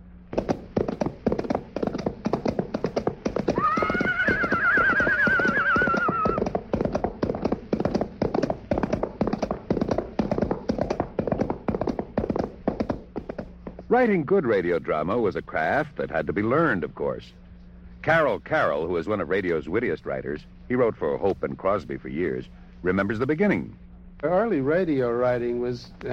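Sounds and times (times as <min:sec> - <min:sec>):
coconut shells imitating galloping horse hooves as a radio sound effect: 0:00.3 - 0:14.2
loud horse whinny: 0:03.4 - 0:06.5
speech: 0:14.0 - 0:17.4, 0:18.0 - 0:26.1.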